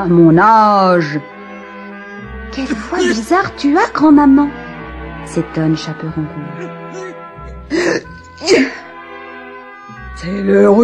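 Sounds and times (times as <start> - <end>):
speech: 0.0 - 1.4, 2.6 - 4.6, 5.2 - 7.1, 7.7 - 8.8, 10.2 - 10.8
person imitating a sneeze: 2.9 - 3.2, 6.5 - 8.7.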